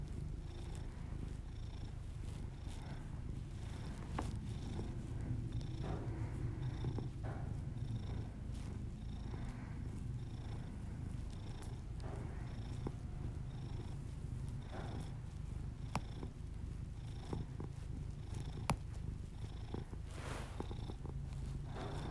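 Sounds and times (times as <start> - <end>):
domestic cat purring: 0.0 - 22.0.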